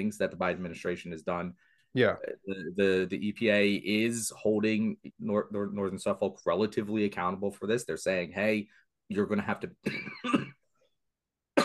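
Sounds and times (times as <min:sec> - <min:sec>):
speech: 0:00.0 - 0:10.5
person coughing: 0:09.8 - 0:10.7.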